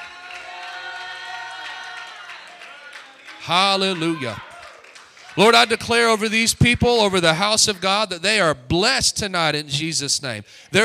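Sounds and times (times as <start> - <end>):
church audience shouting praise: 0.0 - 6.3
church audience clapping: 0.0 - 8.1
speech: 3.4 - 4.5, 5.4 - 10.8.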